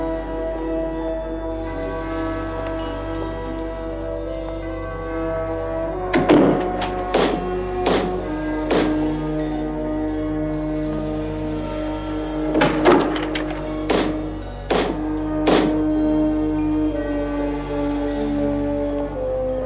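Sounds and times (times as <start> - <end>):
heavy doors being shut in a Vatican building: 0.0 - 19.6.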